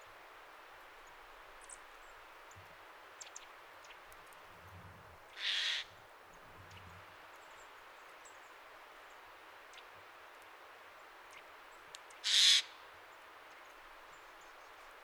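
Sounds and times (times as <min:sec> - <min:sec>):
faint background hiss: 0:00.0 - 0:15.0
Eurasian jay Garrulus glandarius giving harsh rasping screeches: 0:05.4 - 0:05.9.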